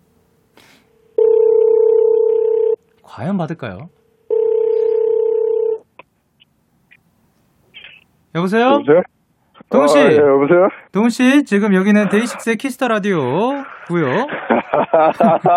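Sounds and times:
electronic ringback tone of an outgoing phone call: 0:01.2 - 0:02.8, 0:04.3 - 0:05.8
speech: 0:03.2 - 0:04.0, 0:08.4 - 0:09.1, 0:09.7 - 0:15.5
laughter: 0:13.8 - 0:15.5.

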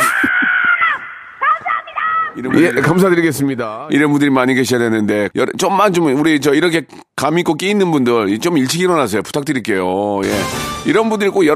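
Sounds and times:
teacher imitating a crow cawing: 0:00.0 - 0:01.4
speech: 0:02.4 - 0:11.5.

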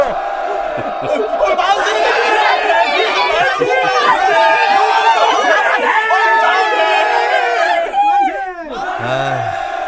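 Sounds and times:
laughter: 0:00.0 - 0:07.9, 0:08.8 - 0:09.8
large crowd shouting cheers of hurrah: 0:00.0 - 0:09.8
whoops: 0:04.9 - 0:09.5.

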